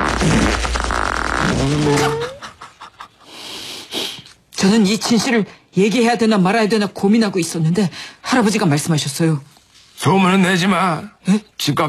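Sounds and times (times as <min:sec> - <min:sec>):
loud fart with squeaky sputtering puffs: 0:00.0 - 0:02.4
speech: 0:04.6 - 0:11.8.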